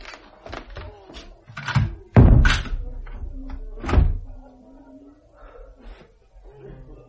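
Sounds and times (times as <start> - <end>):
door thudding shut: 1.7 - 2.9, 3.5 - 4.3.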